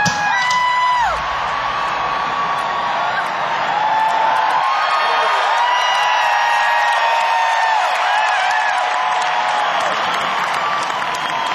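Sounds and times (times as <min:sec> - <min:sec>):
huge crowd cheering: 0:00.0 - 0:11.5
scatter of clapping: 0:03.2 - 0:11.5.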